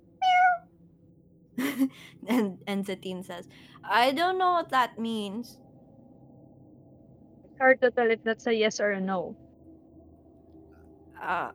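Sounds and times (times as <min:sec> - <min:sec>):
faint low hum: 0:00.0 - 0:11.5
cat meowing: 0:00.2 - 0:00.6
speech: 0:01.6 - 0:05.6, 0:07.6 - 0:09.4, 0:11.2 - 0:11.5.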